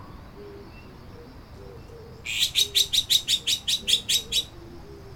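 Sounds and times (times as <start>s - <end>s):
bird call of high sharp chips: 1.8s - 4.6s.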